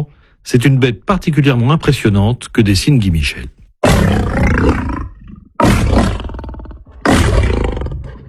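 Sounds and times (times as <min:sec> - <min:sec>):
speech: 0:00.0 - 0:04.9
lion roaring: 0:03.8 - 0:08.2.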